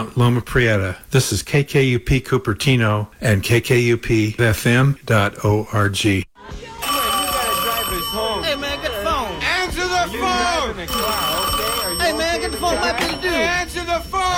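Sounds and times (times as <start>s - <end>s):
speech: 0.0s - 6.6s, 12.1s - 14.3s
old-style telephone bell ringing: 6.8s - 14.3s.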